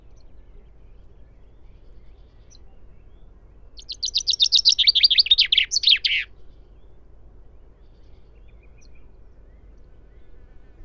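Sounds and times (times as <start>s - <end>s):
common chaffinch Fringilla coelebs singing: 3.8s - 6.3s.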